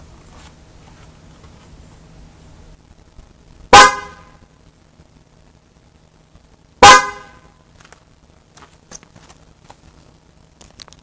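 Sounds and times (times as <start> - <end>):
RX350 car horn: 3.7 - 4.4, 6.8 - 7.5.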